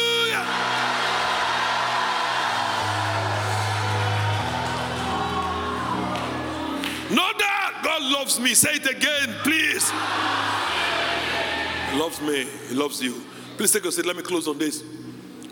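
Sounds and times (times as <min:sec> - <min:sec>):
audience shouting hallelujah and cheering: 0:00.0 - 0:07.8, 0:09.0 - 0:12.7
steady low musical drone: 0:00.0 - 0:07.8, 0:09.0 - 0:15.5
speech: 0:08.2 - 0:10.8, 0:11.9 - 0:15.0.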